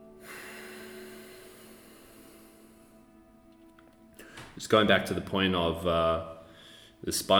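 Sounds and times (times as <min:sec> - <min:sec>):
slow deep breath drawn through the nose: 0:00.1 - 0:03.1, 0:06.5 - 0:07.0
speech: 0:04.6 - 0:06.4, 0:07.0 - 0:07.3.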